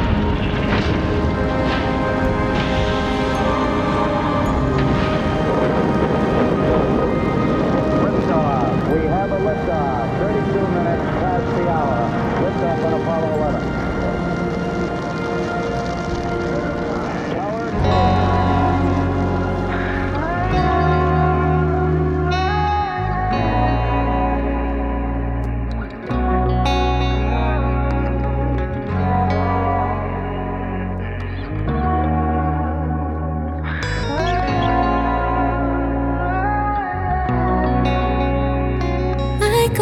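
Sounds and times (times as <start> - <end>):
rocket engines roaring at launch: 0.0 - 20.2
indistinct voices: 0.0 - 38.2, 39.4 - 39.8.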